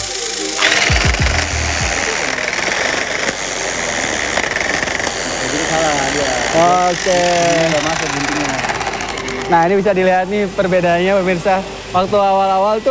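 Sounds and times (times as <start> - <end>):
tufting gun punching yarn into patterned canvas: 0.0 - 9.9
speech: 6.6 - 8.7, 9.5 - 12.8.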